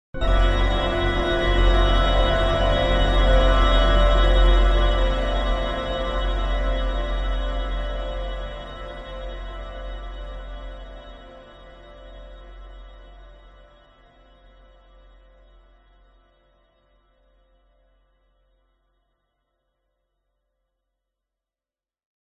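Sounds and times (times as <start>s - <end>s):
dramatic evil horror organ stab: 0.2s - 12.7s.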